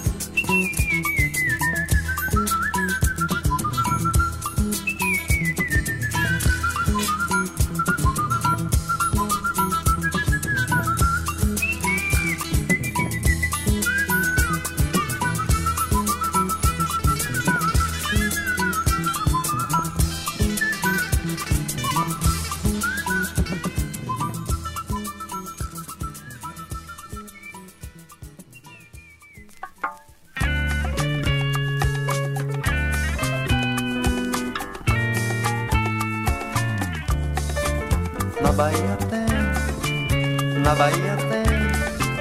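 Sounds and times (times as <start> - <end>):
full band accompaniment with percussion and bass: 0.0 - 29.6, 30.3 - 42.1
person whistling a melody: 0.0 - 31.9, 38.4 - 42.1
speech: 0.5 - 0.8.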